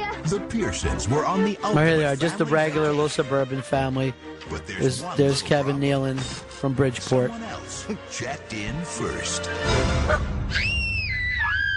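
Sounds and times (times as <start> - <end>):
speech: 0.2 - 10.7
alien shrill sustained scream: 10.1 - 11.7
little girl's high scream: 10.5 - 11.7.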